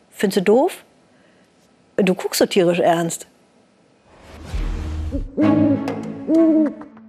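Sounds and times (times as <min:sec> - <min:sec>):
speech: 0:00.2 - 0:00.9, 0:02.0 - 0:03.3
owl hooting: 0:05.4 - 0:06.9.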